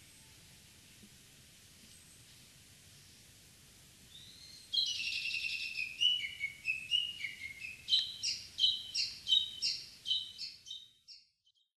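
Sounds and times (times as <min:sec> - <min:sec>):
low background noise: 0:00.0 - 0:11.1
Japanese bush warbler singing: 0:04.1 - 0:11.4.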